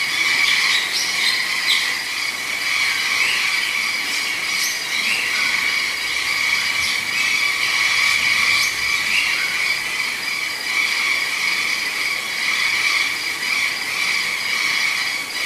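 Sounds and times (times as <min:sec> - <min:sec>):
rainforest frogs calling in Costa Rica: 0:00.0 - 0:15.4
rainforest insects buzzing in Costa Rica: 0:00.0 - 0:15.4
scattered chirps and trills: 0:00.0 - 0:15.4.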